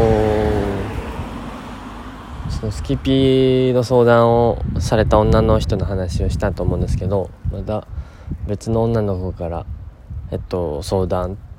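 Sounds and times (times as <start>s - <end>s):
car passing: 0.0s - 3.8s
speech: 2.6s - 11.4s.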